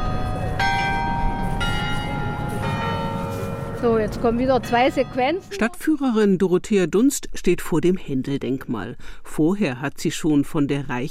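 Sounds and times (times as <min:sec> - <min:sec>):
carillon bells ringing from a tower: 0:00.0 - 0:05.8
speech: 0:03.8 - 0:11.0.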